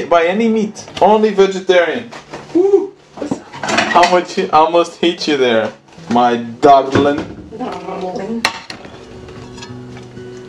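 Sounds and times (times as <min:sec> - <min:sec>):
speech: 0:00.0 - 0:08.6
dishes and food container handled in a kitchen: 0:03.2 - 0:04.3, 0:08.4 - 0:09.8.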